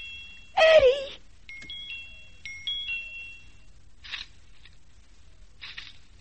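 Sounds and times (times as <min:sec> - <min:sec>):
tiny high-pitched doorbell pushed with a pencil tip chiming: 0:00.0 - 0:03.8.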